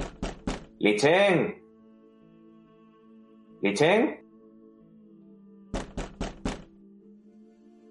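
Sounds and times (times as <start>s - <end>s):
knocking on a door: 0.0s - 0.8s, 5.7s - 6.7s
speech: 0.8s - 1.6s, 3.6s - 4.2s.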